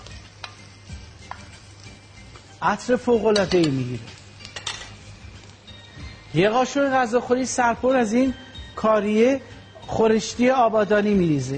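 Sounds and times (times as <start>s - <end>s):
meat and onions frying with garlic in a pan: 0.0s - 6.3s
speech: 2.6s - 4.2s, 6.3s - 11.5s.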